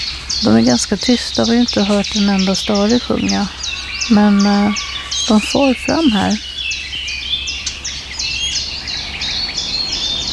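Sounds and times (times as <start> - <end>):
low steady hum: 0.0 - 7.0
blackcap contact calls, sharp dry smacking tack notes: 0.0 - 8.7
speech: 0.4 - 6.5.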